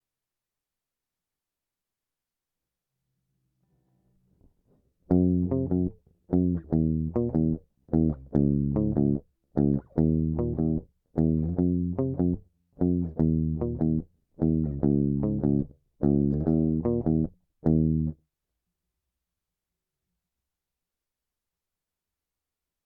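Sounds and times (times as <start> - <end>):
lead guitar: 5.1 - 18.2.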